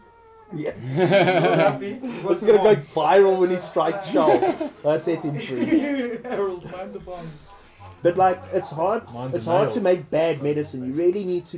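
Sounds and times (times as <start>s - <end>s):
cat meowing: 0.0s - 0.8s
speech: 0.5s - 11.5s
laughter: 0.6s - 9.8s.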